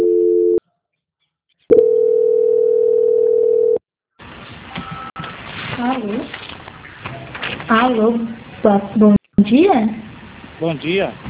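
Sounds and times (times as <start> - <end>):
telephone line tones during a call transfer: 0.0 - 0.6, 1.7 - 3.8
speech: 7.7 - 10.0, 10.6 - 11.2.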